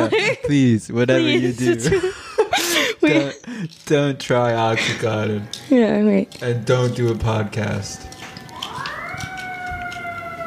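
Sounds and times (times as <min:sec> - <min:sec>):
speech: 0:00.0 - 0:02.2, 0:03.0 - 0:08.1
laughter: 0:00.0 - 0:03.8, 0:04.4 - 0:05.4
ambulance siren wailing as it passes: 0:04.8 - 0:10.4.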